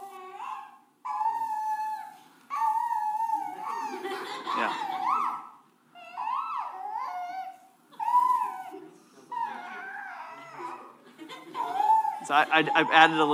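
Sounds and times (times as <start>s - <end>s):
puppy howling: 0.0s - 11.0s, 11.6s - 13.3s
laughter: 3.6s - 5.2s, 8.7s - 13.3s
speech: 12.3s - 13.3s.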